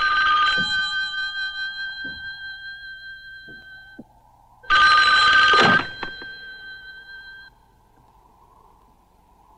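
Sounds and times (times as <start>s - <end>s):
old-fashioned telephone bell ringing: 0.0s - 4.0s, 4.6s - 7.7s.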